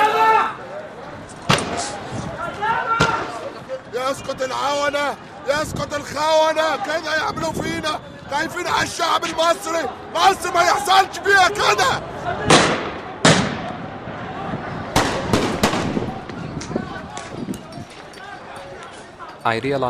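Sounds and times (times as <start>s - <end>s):
shouting and chatter of an agitated crowd: 0.0s - 19.4s
speech: 4.1s - 12.6s, 19.4s - 19.8s
sharp loud gunshot-like cracks: 12.5s - 13.7s, 14.9s - 16.4s.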